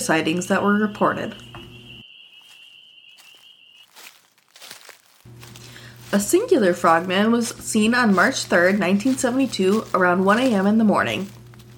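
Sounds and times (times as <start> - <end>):
speech: 0.0 - 1.5, 6.1 - 11.4
steady high insect chirp: 1.5 - 5.6
faint soft footsteps of someone hiking: 3.2 - 11.7.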